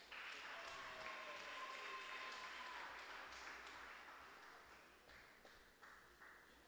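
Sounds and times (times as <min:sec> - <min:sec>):
crowd applauding: 0:00.0 - 0:06.6
cheers and whistles: 0:00.4 - 0:03.2.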